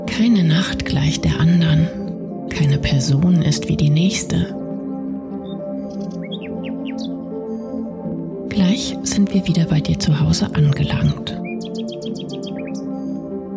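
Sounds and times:
soft voice speaking: 0:00.1 - 0:04.5, 0:08.5 - 0:11.4
speech: 0:00.2 - 0:02.0, 0:02.6 - 0:04.6, 0:08.6 - 0:11.4
nightingale singing: 0:04.6 - 0:07.9, 0:11.3 - 0:13.2.

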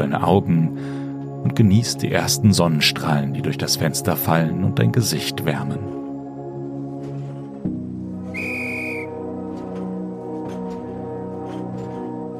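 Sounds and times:
speech: 0:00.0 - 0:06.0
short high train whistle blast before departure: 0:08.2 - 0:09.4.

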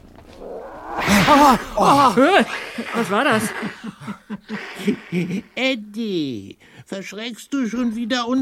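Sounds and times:
tomcat growling yowls: 0:00.2 - 0:02.8
tomcat hissing at strangers in a toy shop: 0:00.3 - 0:03.8
laughter: 0:01.1 - 0:05.6
speech: 0:01.3 - 0:08.4.

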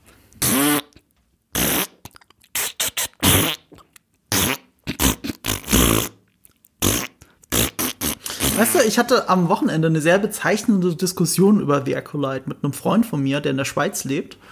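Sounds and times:
fart noises strung together like a crude tune: 0:00.4 - 0:06.2, 0:06.8 - 0:08.8
speech: 0:08.6 - 0:14.5.

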